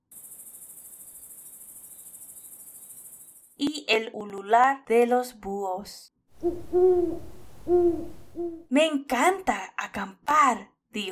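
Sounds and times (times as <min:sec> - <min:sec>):
chorus of crickets at night at a campsite: 0:00.0 - 0:03.6
speech: 0:03.6 - 0:11.0.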